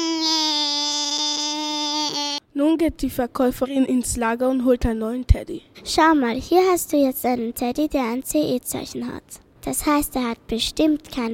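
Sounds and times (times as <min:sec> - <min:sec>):
small child crying in a toy shop: 0:00.0 - 0:02.4
speech: 0:02.6 - 0:11.3.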